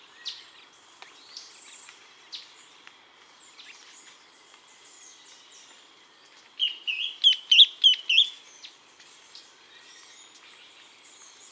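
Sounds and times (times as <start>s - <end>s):
ferruginous antbird Drymophila ferruginea calling: 6.6s - 8.7s.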